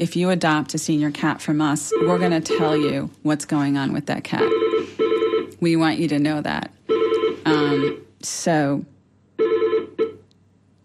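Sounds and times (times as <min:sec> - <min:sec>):
speech: 0:00.0 - 0:05.0, 0:05.6 - 0:06.8, 0:07.4 - 0:08.9
telephone ringing with an electronic ringtone: 0:01.9 - 0:03.0, 0:04.4 - 0:05.6, 0:06.9 - 0:08.0, 0:09.4 - 0:10.2.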